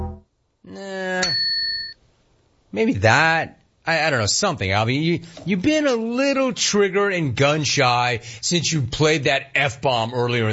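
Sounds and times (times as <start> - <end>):
short tone: 0.0 - 0.2
speech: 0.6 - 1.5, 2.7 - 10.5
bell sound effect ding: 1.2 - 2.0.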